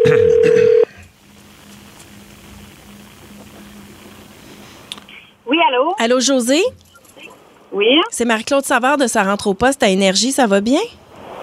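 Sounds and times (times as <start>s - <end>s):
ringback tone of an outgoing telephone call: 0.0s - 0.9s
faint telephone line noise: 1.0s - 11.4s
speech: 6.0s - 6.8s, 7.7s - 11.1s.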